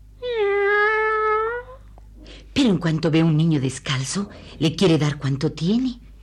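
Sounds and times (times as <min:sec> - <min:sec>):
cat meowing: 0:00.2 - 0:01.8
speech: 0:02.6 - 0:06.1.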